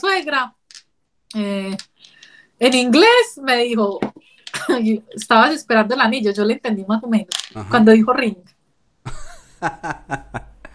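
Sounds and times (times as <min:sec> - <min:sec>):
speech: 0:00.0 - 0:00.6, 0:01.3 - 0:01.9, 0:02.6 - 0:04.1, 0:04.7 - 0:10.5
laughter: 0:07.6 - 0:08.0, 0:09.1 - 0:10.7
person coughing: 0:07.6 - 0:08.0, 0:09.1 - 0:10.4.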